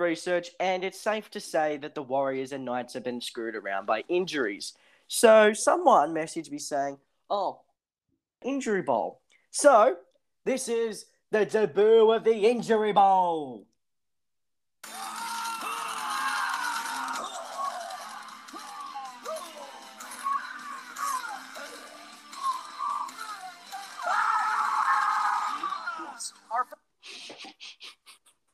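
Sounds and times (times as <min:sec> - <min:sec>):
speech: 0:00.0 - 0:07.6, 0:08.4 - 0:13.7
person screaming: 0:14.8 - 0:21.8, 0:22.4 - 0:26.3.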